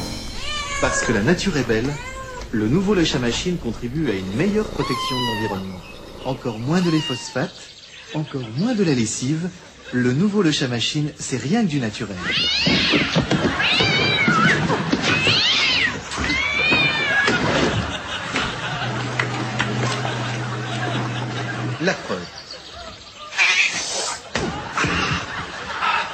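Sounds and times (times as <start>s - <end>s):
cat meowing and caterwauling: 0.2s - 2.7s, 4.6s - 5.8s, 6.7s - 7.6s, 12.2s - 17.4s
speech: 0.8s - 13.2s, 21.8s - 22.4s
laughter: 17.2s - 23.4s, 24.1s - 26.1s.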